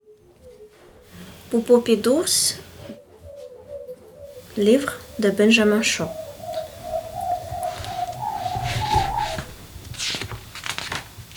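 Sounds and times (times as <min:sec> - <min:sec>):
birds chirping outdoors in spring morning: 0:00.0 - 0:10.6
soft hum: 0:00.0 - 0:11.3
speech: 0:01.5 - 0:02.7, 0:04.6 - 0:06.2
long steady whistling bird call: 0:02.7 - 0:10.2.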